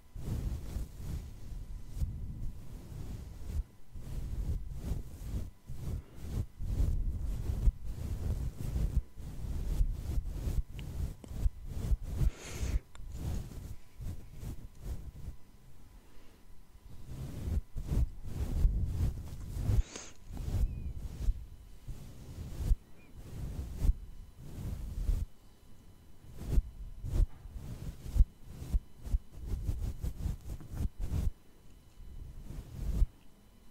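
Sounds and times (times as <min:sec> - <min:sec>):
soft brushing against a face: 0:00.0 - 0:33.6
bright scratches: 0:00.2 - 0:15.4, 0:16.9 - 0:25.3, 0:26.3 - 0:31.3, 0:32.2 - 0:33.1.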